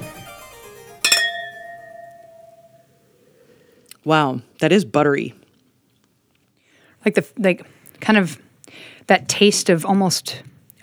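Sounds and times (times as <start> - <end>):
glasses clinking in a toast: 1.0 - 2.9
speech: 4.0 - 5.4, 7.0 - 10.8.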